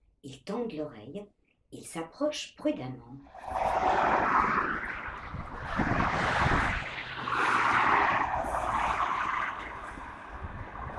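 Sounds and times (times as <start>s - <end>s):
speech: 0.2s - 4.6s
fast road traffic roaring past: 3.3s - 10.9s.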